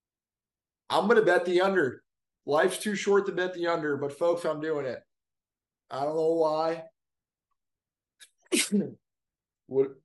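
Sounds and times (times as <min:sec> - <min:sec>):
speech: 0:00.9 - 0:05.1, 0:05.9 - 0:06.9, 0:08.5 - 0:09.0, 0:09.7 - 0:10.0
person sneezing: 0:08.2 - 0:09.0.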